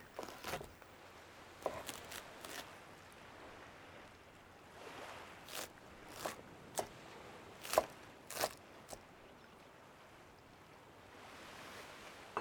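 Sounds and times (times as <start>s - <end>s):
faint steady hum: 0.0s - 10.9s
knife slicing a vegetable sandwich on a cutting board: 0.2s - 0.7s, 1.6s - 2.6s, 5.5s - 6.9s, 7.6s - 8.6s.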